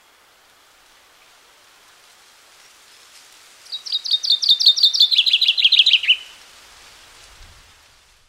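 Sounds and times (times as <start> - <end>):
faint background hiss: 0.0 - 8.2
Common chaffinch song: 3.6 - 6.4.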